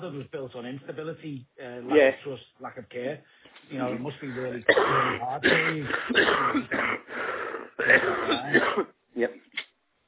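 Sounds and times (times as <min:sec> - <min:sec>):
speech: 0:00.0 - 0:09.6
coughing: 0:04.4 - 0:09.0
throat clearing: 0:04.7 - 0:07.1, 0:07.7 - 0:09.0.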